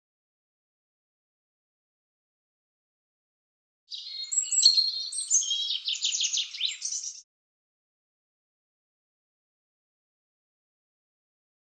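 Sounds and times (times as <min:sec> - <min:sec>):
European robin singing thin whistles and warbles: 0:03.9 - 0:07.3.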